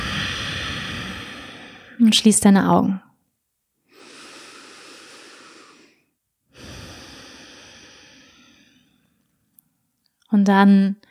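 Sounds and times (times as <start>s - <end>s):
deep breathing in and out during seated meditation: 0.0s - 2.2s, 3.8s - 9.2s
speech: 2.0s - 3.0s, 10.3s - 11.0s.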